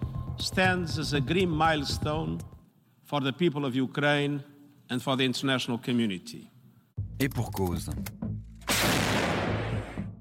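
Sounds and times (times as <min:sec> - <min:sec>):
speech: 0:00.4 - 0:02.5, 0:03.1 - 0:06.5, 0:07.2 - 0:08.2
heavy explosive boom of mortar fire in the war in Ukraine: 0:08.7 - 0:10.0.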